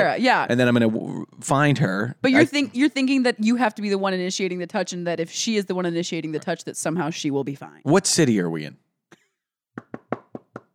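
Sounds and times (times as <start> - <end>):
speech: 0.0 - 8.9
firm knocking on a door: 9.8 - 10.7.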